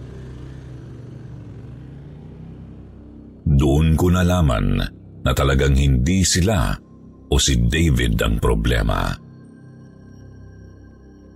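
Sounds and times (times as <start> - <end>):
motorcycle engine starting and revving: 0.0 - 2.6
speech: 3.5 - 9.2.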